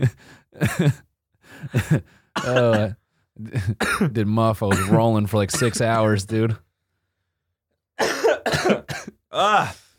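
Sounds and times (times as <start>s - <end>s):
speech: 0.0s - 6.7s, 9.4s - 9.8s
harsh rasping coughs: 1.7s - 6.2s, 8.0s - 9.8s.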